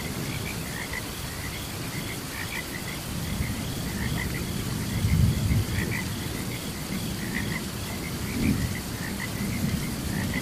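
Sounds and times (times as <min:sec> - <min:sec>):
crickets chirping: 0:00.0 - 0:10.4
rain during a thunderstorm: 0:00.0 - 0:10.4
low thunder: 0:03.2 - 0:10.4.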